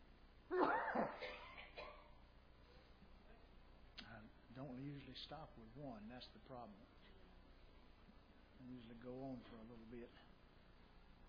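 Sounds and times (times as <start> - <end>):
speech: 0.5 - 1.4, 4.8 - 7.1, 8.6 - 10.3
person sneezing: 0.5 - 1.5.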